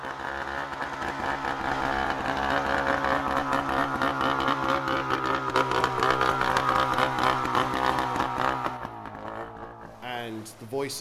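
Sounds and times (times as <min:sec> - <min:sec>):
rescue boat engine running: 0:00.0 - 0:10.7
speech: 0:10.7 - 0:10.9.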